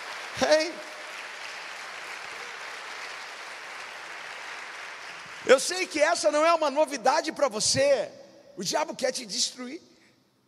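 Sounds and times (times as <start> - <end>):
congregation applauding: 0.0 - 6.0
speech: 0.4 - 0.9, 5.4 - 9.9.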